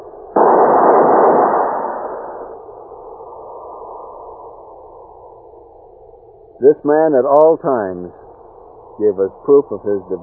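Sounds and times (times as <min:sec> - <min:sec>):
rifle volley fired as a funeral salute at a graveside: 0:00.4 - 0:02.5
speech: 0:06.6 - 0:08.2, 0:09.0 - 0:10.2.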